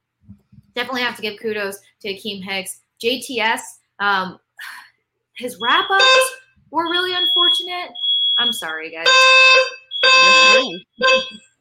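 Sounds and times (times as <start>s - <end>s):
speech: 0.3s - 4.8s, 5.4s - 9.8s, 10.5s - 11.5s
fire alarm being tested: 5.4s - 11.4s.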